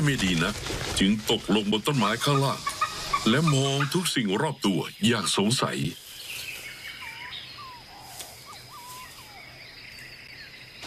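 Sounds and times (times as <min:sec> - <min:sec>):
speech: 0:00.0 - 0:06.0
male bird calling from trees near a nest hollow: 0:06.8 - 0:09.6.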